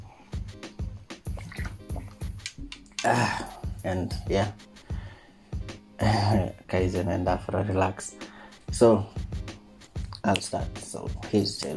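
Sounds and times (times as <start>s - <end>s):
sipping and gulping water: 1.2s - 2.4s
speech: 3.0s - 4.6s, 6.0s - 8.2s, 8.8s - 9.2s, 10.2s - 11.7s.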